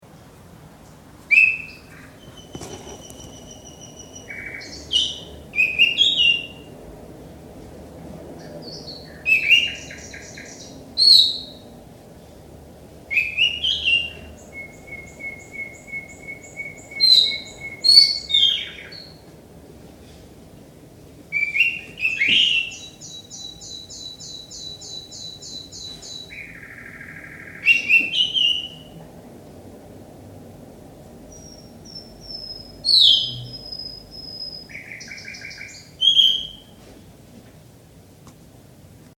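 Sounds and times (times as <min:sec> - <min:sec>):
nightingale duet: 0:01.3 - 0:06.7, 0:08.4 - 0:11.6, 0:13.1 - 0:19.2, 0:21.4 - 0:29.0, 0:31.3 - 0:36.8.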